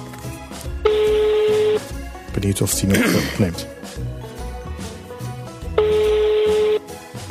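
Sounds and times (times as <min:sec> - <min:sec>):
telephone tone from a phone on speakerphone: 0:00.8 - 0:01.9, 0:05.7 - 0:06.9
speech: 0:02.3 - 0:03.7.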